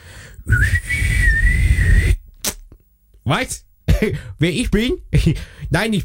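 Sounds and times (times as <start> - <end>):
person whistling a steady note imitating an answering machine beep: 0.1 - 2.2
brief sharp click: 2.3 - 2.8
speech: 3.3 - 6.0.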